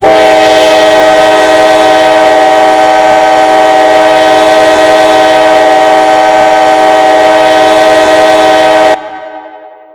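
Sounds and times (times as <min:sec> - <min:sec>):
K5LA horn: 0:00.0 - 0:09.8.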